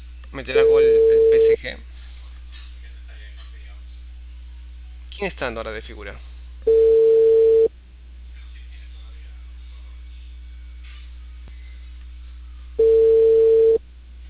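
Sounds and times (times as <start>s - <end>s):
low hum: 0.0s - 14.2s
speech: 0.3s - 1.9s, 5.2s - 7.0s
landline phone ringback tones through a telephone line: 0.6s - 1.6s, 6.7s - 7.7s, 12.8s - 13.8s.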